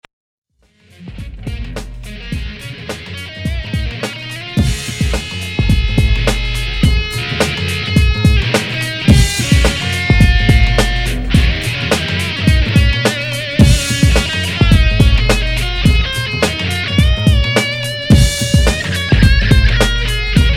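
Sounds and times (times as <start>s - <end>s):
funky music loop: 0.6s - 20.5s.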